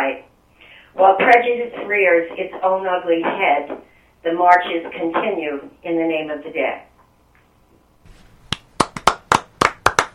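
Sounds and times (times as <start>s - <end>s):
speech: 1.0s - 6.9s
single person clapping hands: 8.4s - 10.1s.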